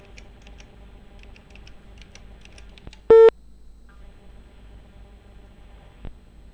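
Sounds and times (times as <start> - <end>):
faint short tone: 3.1 - 3.3
loud steady electronic beep of a telephone call to a switched-off phone: 3.1 - 3.3.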